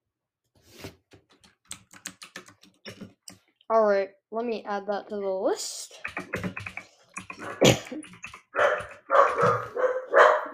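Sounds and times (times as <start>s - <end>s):
speech: 3.7s - 6.4s, 7.4s - 8.1s
dog barking: 8.5s - 10.5s.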